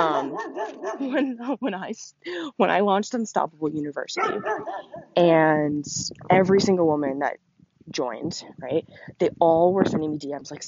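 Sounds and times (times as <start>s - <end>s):
dog barking in short high yips: 0.2s - 1.2s, 4.2s - 5.2s
speech: 0.3s - 10.6s.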